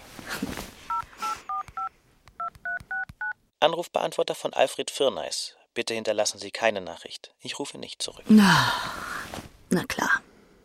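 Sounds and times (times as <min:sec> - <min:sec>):
telephone number dialed on a touch-tone keypad: 0:00.9 - 0:03.4
speech: 0:03.6 - 0:10.2.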